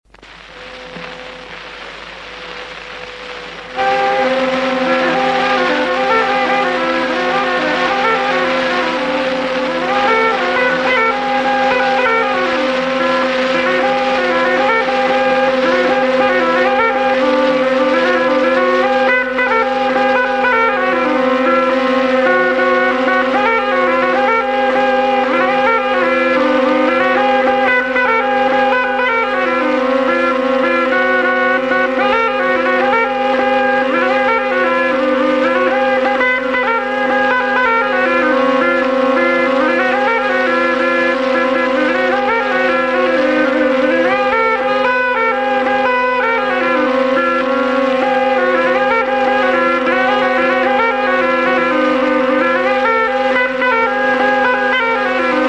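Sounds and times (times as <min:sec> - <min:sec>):
torupill bagpipe playing a polka in Mustjala: 0:00.2 - 0:55.4.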